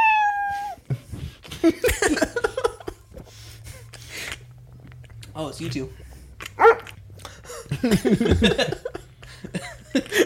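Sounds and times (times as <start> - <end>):
people laughing: 0.9 - 3.0, 7.4 - 10.2
speech: 1.6 - 2.4, 5.4 - 6.0, 7.8 - 8.9
dog bark sound effect from a soundboard app: 6.6 - 6.9.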